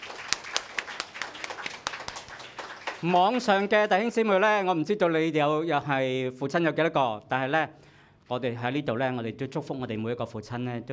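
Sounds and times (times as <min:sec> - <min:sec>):
audience applause: 0:00.0 - 0:03.9
speech: 0:03.0 - 0:10.9.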